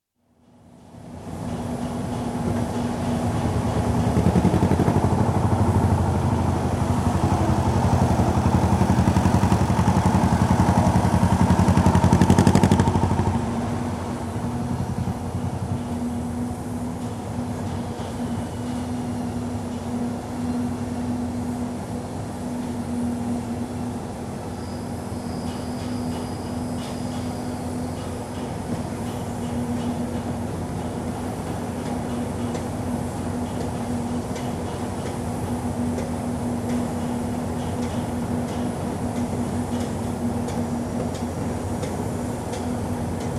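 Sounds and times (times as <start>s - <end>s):
general atmosphere on building site, mid distant: 0.3s - 43.3s
dumper truck passing on building site: 3.2s - 16.4s.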